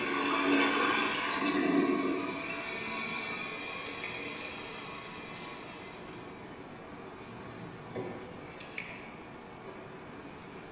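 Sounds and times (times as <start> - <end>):
toilet flushing: 0.0 - 6.1.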